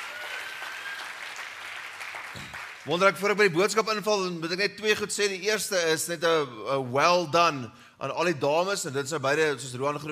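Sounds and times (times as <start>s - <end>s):
audience clapping hands: 0.0s - 3.1s
speech: 2.4s - 10.1s.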